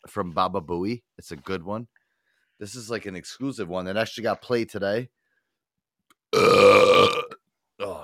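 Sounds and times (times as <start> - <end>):
speech: 0.0 - 2.0, 2.6 - 5.2, 6.3 - 6.8
burp: 6.3 - 8.0.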